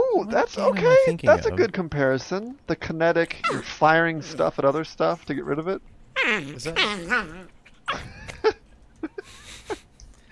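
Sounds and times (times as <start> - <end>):
speech: 0.2 - 8.2
puppy yapping: 6.2 - 8.1.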